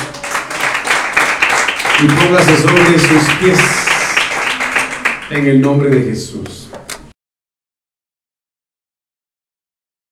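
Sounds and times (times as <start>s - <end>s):
audience clapping hands: 0.0s - 7.1s
speech: 2.0s - 4.0s, 5.3s - 6.6s.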